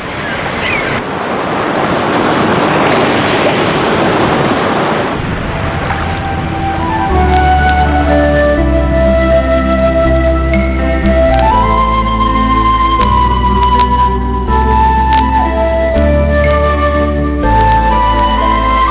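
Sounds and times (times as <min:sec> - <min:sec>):
sea waves washing against a rocky cliff shore: 0:00.0 - 0:08.2
low hum: 0:05.2 - 0:18.8
sustained musical tones: 0:05.2 - 0:18.8.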